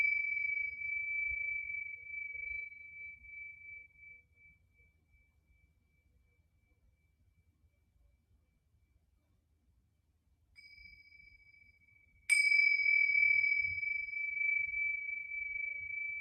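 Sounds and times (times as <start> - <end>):
singing bowl ringing with a pure high tone: 0.0 - 4.6, 10.6 - 16.1.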